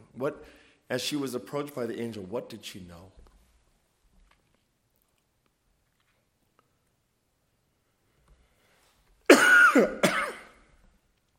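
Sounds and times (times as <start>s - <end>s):
speech: 0.2s - 3.2s
harsh coughs: 9.3s - 10.7s.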